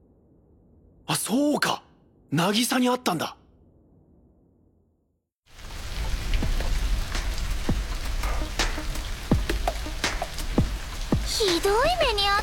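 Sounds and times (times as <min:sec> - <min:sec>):
speech: 0:01.3 - 0:03.4, 0:11.4 - 0:12.4
drips and splashes of rain: 0:05.5 - 0:12.4
heavy rain: 0:05.5 - 0:12.4.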